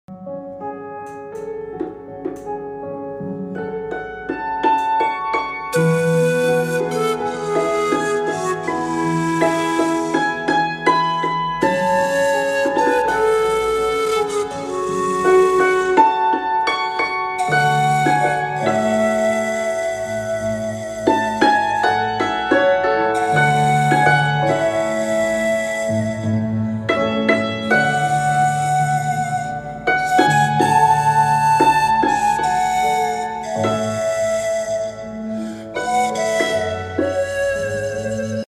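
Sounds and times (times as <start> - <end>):
pan flute: 3.4 - 38.4.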